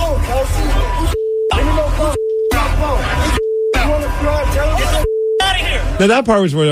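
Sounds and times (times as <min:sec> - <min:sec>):
steady flat censor bleep over swearing: 0:00.6 - 0:05.9
speech: 0:06.0 - 0:06.6.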